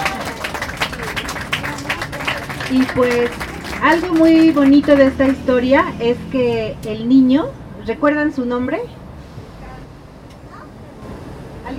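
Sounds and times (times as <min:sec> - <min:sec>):
audience applause after a play: 0:00.0 - 0:05.5
speech: 0:02.7 - 0:09.0.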